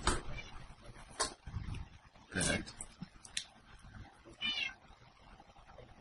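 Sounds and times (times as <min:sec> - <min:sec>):
cat meowing: 0:00.2 - 0:00.6, 0:04.3 - 0:04.8
speech: 0:02.4 - 0:02.9.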